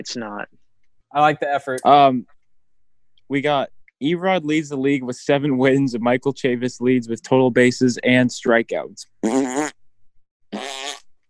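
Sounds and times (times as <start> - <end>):
speech: 0.0 - 2.4, 3.3 - 9.8
raspberry-style fart noises made with the mouth: 9.2 - 9.8, 10.5 - 11.2.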